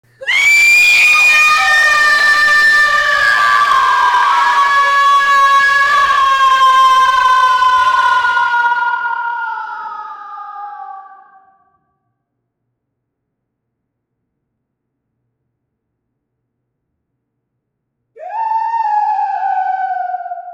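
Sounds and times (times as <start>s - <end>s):
woman cinematic scream in despair: 0.2s - 11.4s, 18.2s - 20.5s.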